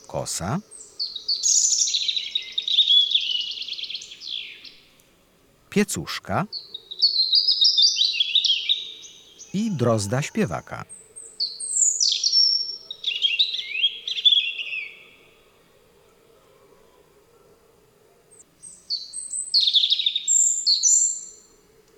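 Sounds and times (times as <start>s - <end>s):
European robin singing cascading high warbles and chittering trills: 0.0s - 4.8s, 6.1s - 15.2s, 18.6s - 21.5s
speech: 0.1s - 0.8s, 5.8s - 6.7s, 9.5s - 11.0s.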